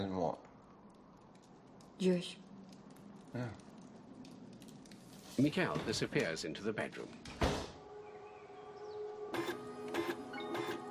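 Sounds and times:
speech: 0.0 - 0.5, 2.0 - 2.4, 3.3 - 3.7, 5.4 - 7.2
slow inkjet printer printing profiles of crime victims: 9.2 - 10.8.

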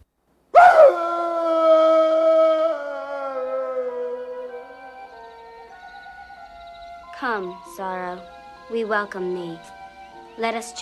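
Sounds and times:
wolves howling together in reply to a call: 0.6 - 6.9
speech: 7.2 - 9.8, 10.4 - 10.7.

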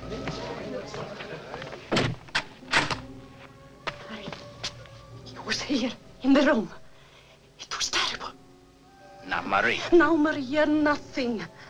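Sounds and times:
low steady noise: 0.0 - 11.6
door being shut and locked: 1.9 - 3.2
speech: 5.7 - 6.8, 9.5 - 11.6.

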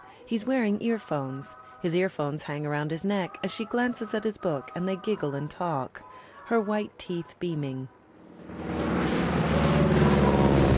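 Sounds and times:
speech: 0.3 - 8.8
airplane engine roar during a descent: 8.2 - 10.7.

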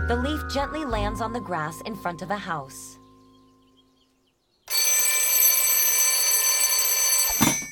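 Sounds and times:
speech: 0.1 - 3.0
shrill electronic alarm clock ringing: 4.7 - 7.7.

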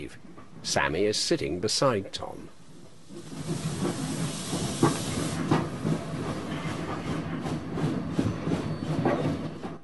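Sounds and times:
speech: 0.1 - 2.6
steam train chugging as it pulls away: 2.6 - 9.8
steam train steam hissing: 2.7 - 7.3.

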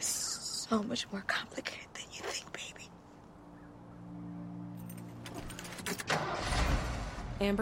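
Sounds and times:
speech: 0.7 - 1.8, 7.4 - 7.6
truck revving and driving off along a road: 6.1 - 7.6.

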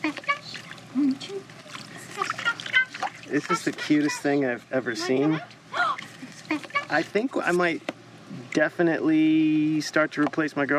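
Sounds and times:
Alsatian dog splashing in pool water: 0.0 - 4.1
speech: 3.3 - 5.6, 6.5 - 10.7.

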